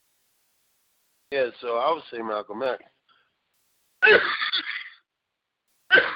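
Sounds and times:
speech: 1.3 - 3.0, 4.0 - 4.4
person sneezing: 4.0 - 4.6, 5.9 - 6.1.

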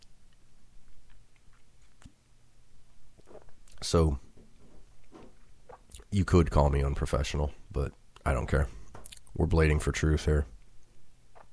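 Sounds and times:
person sipping and swallowing beer: 3.2 - 3.8, 5.0 - 6.1, 11.3 - 11.5
speech: 3.8 - 4.2, 6.1 - 8.8, 9.4 - 10.5.

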